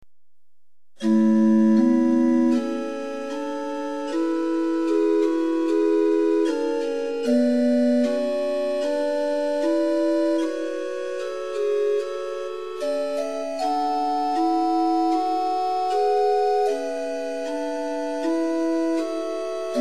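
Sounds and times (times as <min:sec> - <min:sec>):
liturgical organ in equal temperament with Rohr flute stop: 0:01.0 - 0:19.7.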